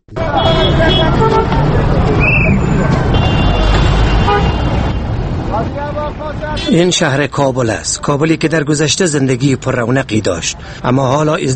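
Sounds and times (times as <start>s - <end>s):
car horns tooting: 0.1s - 5.2s, 5.8s - 7.1s
dense city traffic rumbling: 0.1s - 11.5s
speech: 6.7s - 11.5s.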